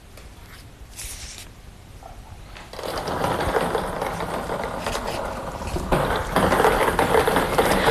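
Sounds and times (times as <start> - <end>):
lottery drawing machine tumbling numbered balls for a sports lottery draw: 2.7 - 7.8.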